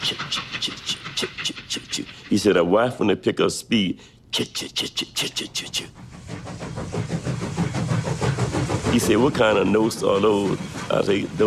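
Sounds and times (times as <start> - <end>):
speech: 0.0 - 0.8, 2.3 - 6.7, 8.9 - 11.4
train going by on the tracks: 0.0 - 3.7, 4.4 - 11.4.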